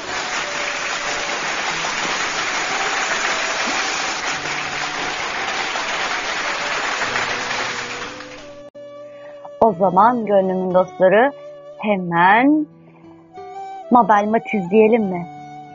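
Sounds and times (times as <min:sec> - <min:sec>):
crowd applauding after a poem reading: 0:00.0 - 0:08.7
speech: 0:09.7 - 0:12.8, 0:13.9 - 0:15.3.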